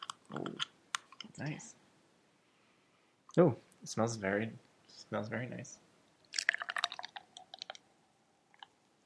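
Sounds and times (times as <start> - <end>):
speech: 1.4 - 1.8, 3.3 - 5.9
10% beer pouring from a 16-ounce can into a 16-ounce glass: 6.3 - 7.8.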